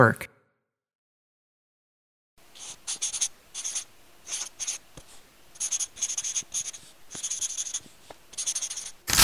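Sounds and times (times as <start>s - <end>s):
speech: 0.0s - 0.3s
pencil writing on notebook paper: 2.4s - 9.1s.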